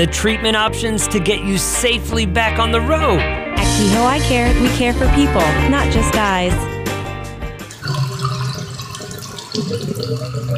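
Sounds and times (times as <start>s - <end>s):
speech: 0.0s - 6.7s, 9.6s - 10.5s
water running and gurgling in household drains: 7.6s - 10.5s.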